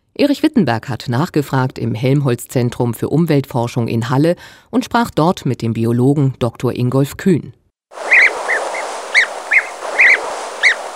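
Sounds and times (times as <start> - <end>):
speech: 0.2 - 8.1
European bee-eater giving rolling liquid calls: 8.0 - 10.9
steady hiss of outdoor noise: 8.0 - 10.9.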